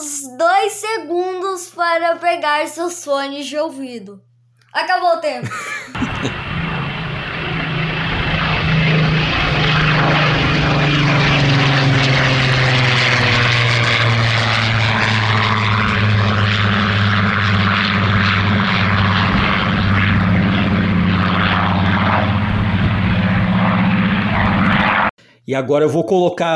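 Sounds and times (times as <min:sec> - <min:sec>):
speech: 0:00.2 - 0:06.4, 0:25.5 - 0:26.5
laughter: 0:05.4 - 0:06.4
Griffon-engined Spitfire propeller aircraft engine roar as the plane passes: 0:06.0 - 0:25.2.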